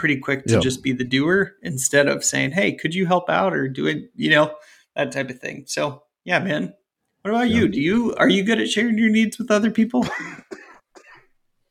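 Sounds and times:
speech: 0.0 - 10.6
person coughing, short harsh bursts: 0.5 - 0.8, 10.0 - 11.3.

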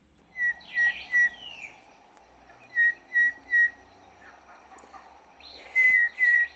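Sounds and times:
low steady hum: 0.0 - 6.5
person whistling imitating Cape Batis call: 5.7 - 6.5.

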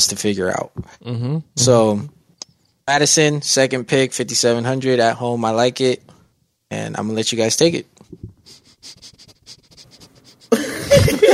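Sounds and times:
speech: 0.0 - 2.2, 2.9 - 8.3
person sniffing with their nose: 8.3 - 10.6
laughter: 10.5 - 11.3.

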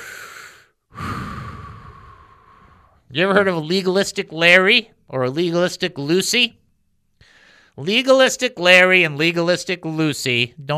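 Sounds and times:
deep breath: 0.0 - 3.1, 7.2 - 7.8
speech: 3.1 - 6.6, 7.8 - 10.7.

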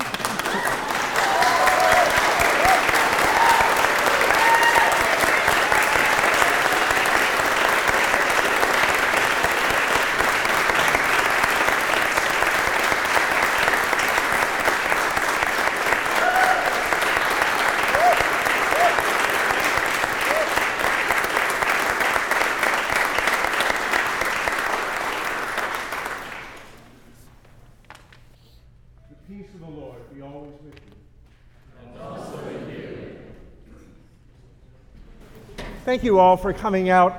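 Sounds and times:
large audience applauding at a church service: 0.0 - 26.9
faint voices and cheers: 1.0 - 6.2
speech: 35.9 - 37.1.

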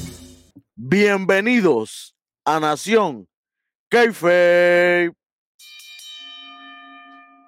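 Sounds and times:
speech: 0.9 - 3.3, 3.9 - 5.8
bell struck once and ringing: 5.6 - 7.4.

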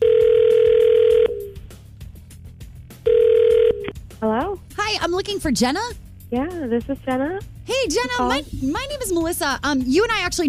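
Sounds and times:
electronic phone ringback tone: 0.0 - 1.6, 3.1 - 3.9
speech: 5.1 - 10.4.

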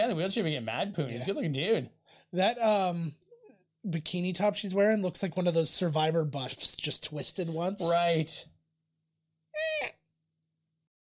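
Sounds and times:
speech: 0.0 - 3.2, 3.8 - 8.5
person's voice imitating a bird call as a movie sound effect: 9.6 - 10.0.

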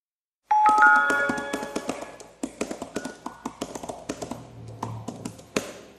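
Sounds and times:
ringing chime: 0.5 - 2.1.

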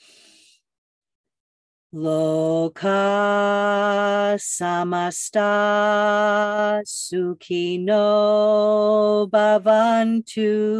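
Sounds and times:
deep inhaled breath during a guided meditation: 0.0 - 0.7
speech: 1.9 - 10.7.

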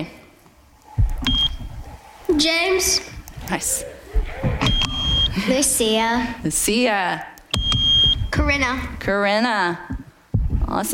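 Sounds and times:
green contestant's electronic quiz buzzer beep: 1.3 - 1.6, 4.6 - 5.4, 7.5 - 8.4
speech: 2.4 - 4.0, 5.4 - 7.3, 8.5 - 9.9, 10.7 - 10.9.

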